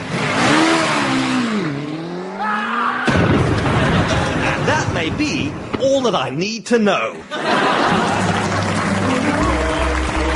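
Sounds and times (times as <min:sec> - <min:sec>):
stunt car engine revving hard while accelerating: 0:00.0 - 0:02.6
laughter: 0:03.6 - 0:05.0, 0:07.1 - 0:10.3
speech: 0:05.0 - 0:08.0.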